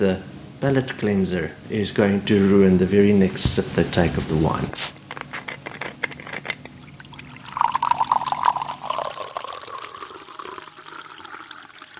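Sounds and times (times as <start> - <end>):
speech: 0.0 - 5.0
water pouring from a jug into a vessel: 6.8 - 11.9.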